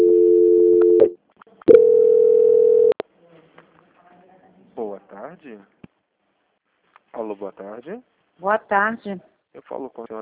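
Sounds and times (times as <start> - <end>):
telephone tones during a call transfer: 0.0 - 3.0
speech: 5.4 - 5.8, 7.1 - 10.2.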